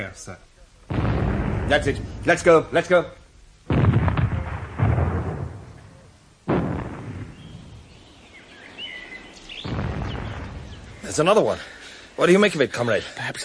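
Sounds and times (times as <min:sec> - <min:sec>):
speech: 0:00.0 - 0:03.9, 0:11.2 - 0:13.4
distant explosions in a town: 0:00.9 - 0:03.0, 0:03.6 - 0:08.0, 0:09.6 - 0:11.4
faint bird chirps: 0:07.2 - 0:11.3.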